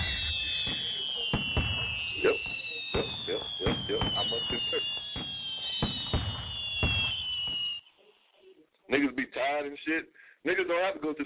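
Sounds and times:
fireworks bangs: 0:00.0 - 0:07.9
speech: 0:09.6 - 0:11.2.

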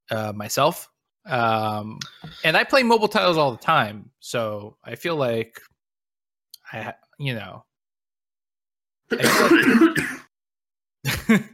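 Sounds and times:
speech: 0:00.1 - 0:05.7, 0:06.7 - 0:07.7, 0:09.1 - 0:10.2, 0:11.0 - 0:11.5
person coughing: 0:09.1 - 0:10.3
throat clearing: 0:09.1 - 0:10.3.

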